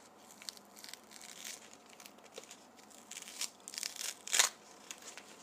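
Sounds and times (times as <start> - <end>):
toilet paper tearing: 0.2 - 5.2.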